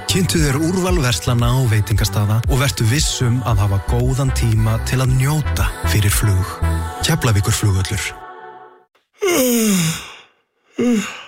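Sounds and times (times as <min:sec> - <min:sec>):
speech: 0:00.1 - 0:08.2, 0:10.8 - 0:11.2
person yawning: 0:09.2 - 0:11.2.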